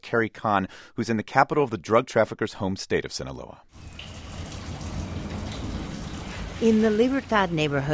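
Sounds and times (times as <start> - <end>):
speech: 0.0 - 4.1, 6.6 - 7.9
slow trickle of water through a wide storm drain in Culiacan, Sinaloa: 3.7 - 7.9.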